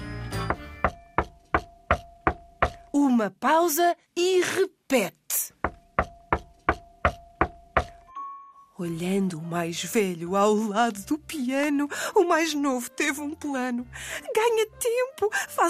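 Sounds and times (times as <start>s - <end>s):
knocking on a door: 0.5s - 2.9s, 5.6s - 8.0s
speech: 3.0s - 5.2s, 8.8s - 15.6s.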